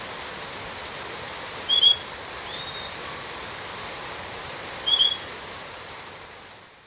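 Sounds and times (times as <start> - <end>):
background hiss: 0.0 - 6.8
Purple-throated euphonia calls in Ecuador: 1.7 - 3.0, 4.8 - 5.3.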